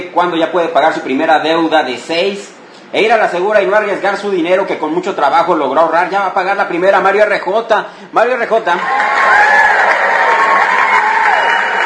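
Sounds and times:
speech: 0.1 - 9.7
crowd cheering with whoops and shouts: 8.8 - 11.8.

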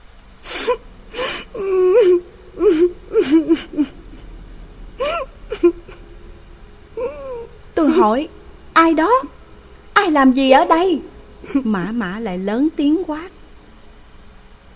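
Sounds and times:
person crying and sobbing in a bathroom: 0.5 - 4.4, 5.0 - 6.1, 7.0 - 8.0, 11.4 - 11.7
speech: 0.7 - 1.2, 8.0 - 9.3, 10.1 - 13.4.

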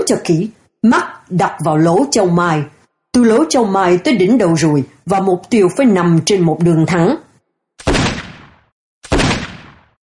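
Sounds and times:
speech: 0.1 - 7.2
M2 rifle shots during aimed target practice: 7.8 - 10.0.

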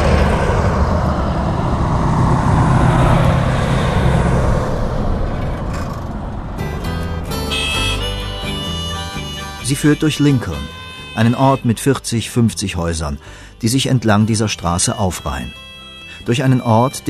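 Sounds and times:
car driving past on a lonely mountain road in New Mexico: 0.0 - 8.3
speech: 9.7 - 17.0.

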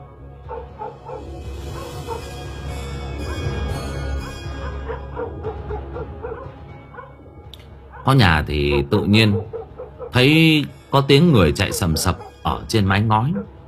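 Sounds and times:
dogs barking in a village: 0.4 - 2.4, 3.2 - 7.2, 7.8 - 10.4, 11.4 - 13.6
speech: 8.0 - 13.6.

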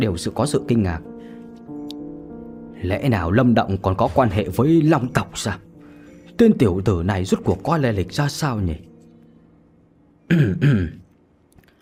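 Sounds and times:
speech: 0.0 - 1.1, 2.8 - 5.7, 6.4 - 8.9, 10.3 - 11.0
man clearing his throat: 10.3 - 11.1.

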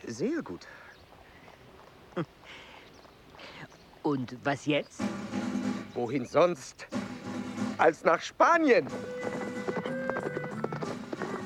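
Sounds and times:
horses' hooves clip-clopping as riders set off: 0.0 - 4.4, 8.6 - 11.4
speech: 0.1 - 0.9, 2.2 - 2.7, 4.0 - 5.3, 6.0 - 7.0, 7.8 - 9.1.

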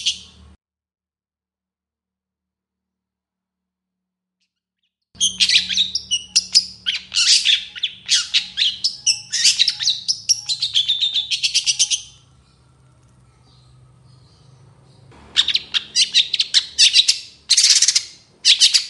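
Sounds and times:
long-tailed shrike singing with scratchy chatter and squeaky notes: 0.0 - 0.6, 5.2 - 18.8.

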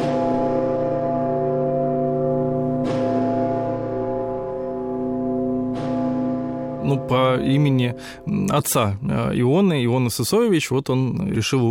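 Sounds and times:
largest church bell of the Rostov Kremlin weighing about 33 tonnes ringing: 0.0 - 9.6
speech: 6.9 - 11.6.

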